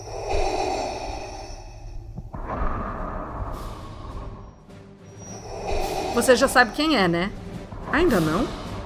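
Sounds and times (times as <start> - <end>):
heavy respirator-style breathing of a scary film villain: 0.0 - 7.1
speech: 6.2 - 8.6.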